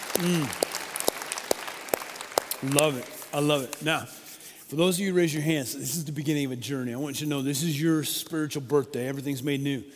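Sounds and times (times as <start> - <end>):
audience applauding: 0.0 - 3.8
speech: 0.2 - 0.6, 2.6 - 9.9.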